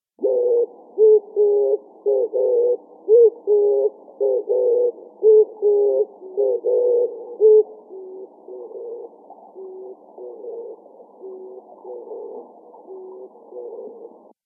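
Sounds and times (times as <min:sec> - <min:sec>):
oriental turtle dove calling: 0:00.2 - 0:14.3.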